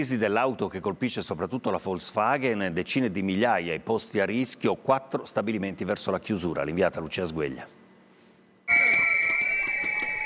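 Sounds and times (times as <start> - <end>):
speech: 0.0 - 7.8
piercing whistle tone blown by protesters at a metalworkers' union march: 8.7 - 10.2.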